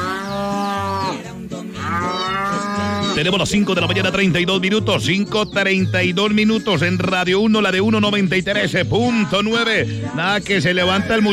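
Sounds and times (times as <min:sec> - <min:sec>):
cattle mooing on a farm at dawn: 0:00.0 - 0:04.4
speech: 0:03.2 - 0:11.3.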